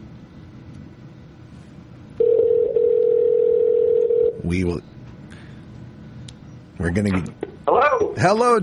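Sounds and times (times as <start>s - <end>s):
telephone line ring tone while dialing in: 2.2s - 4.4s
speech: 4.5s - 5.0s, 6.8s - 8.6s
voice on the telephone line: 6.9s - 8.6s.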